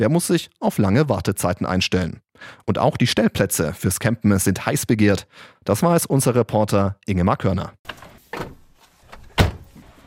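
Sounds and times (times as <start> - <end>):
speech: 0.0 - 8.5
camper van sliding door rumbling along its track and shutting: 7.9 - 10.0.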